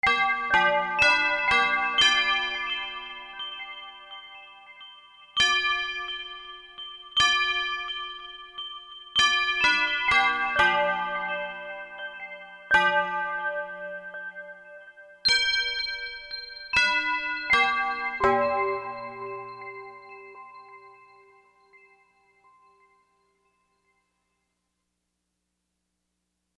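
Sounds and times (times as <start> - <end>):
church bell from Korg MSC-4S Orchestra: 0.0 - 23.4.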